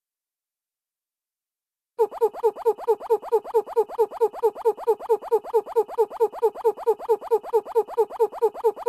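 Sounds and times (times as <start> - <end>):
hooting SMS ringtone: 2.1 - 8.8.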